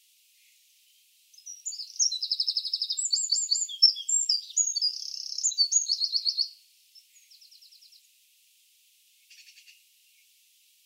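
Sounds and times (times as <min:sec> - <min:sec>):
Eurasian wren Troglodytes troglodytes singing chattering trills: 0:01.4 - 0:08.0.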